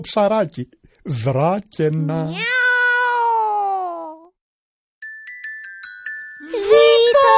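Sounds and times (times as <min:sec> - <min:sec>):
speech: 0:00.0 - 0:02.5
cat being chased away meowing: 0:02.3 - 0:04.2.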